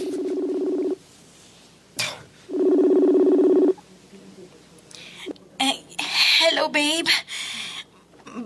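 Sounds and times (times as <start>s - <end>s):
phone line ringing with long buzzy tones: 0.0s - 1.0s, 2.5s - 3.8s
speech: 6.7s - 7.2s.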